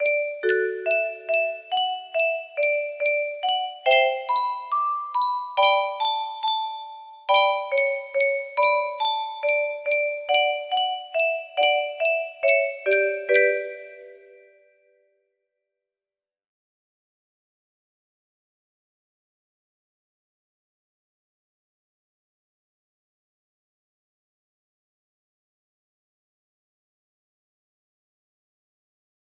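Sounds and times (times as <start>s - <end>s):
slow sad music box melody: 0.0s - 14.6s.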